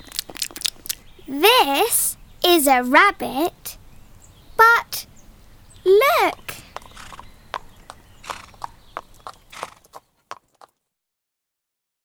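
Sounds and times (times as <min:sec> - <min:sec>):
speech: 0:01.3 - 0:03.8, 0:05.9 - 0:06.4
horse hooves clip-clopping: 0:06.8 - 0:10.8.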